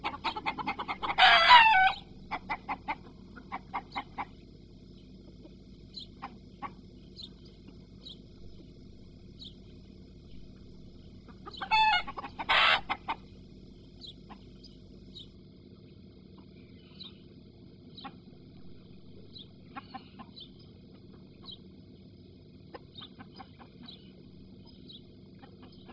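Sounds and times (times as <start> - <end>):
chicken clucking and squawking: 0.0 - 8.2, 11.1 - 13.4, 14.0 - 14.6, 19.6 - 21.7, 22.6 - 24.3, 25.0 - 25.9
constant low hum: 0.0 - 25.9.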